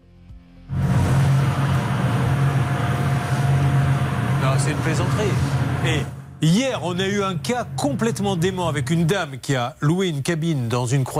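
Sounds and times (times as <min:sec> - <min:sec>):
loud building mechanical ventilation system running: 0:00.7 - 0:11.1
speech: 0:04.7 - 0:11.1.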